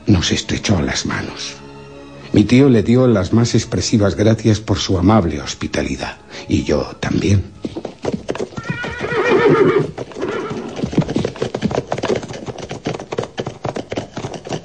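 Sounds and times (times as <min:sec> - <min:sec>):
speech: 0:00.1 - 0:01.6, 0:02.3 - 0:07.9
horse hooves clip-clopping as riders mount: 0:07.0 - 0:14.6
horse whinnying: 0:07.7 - 0:13.2.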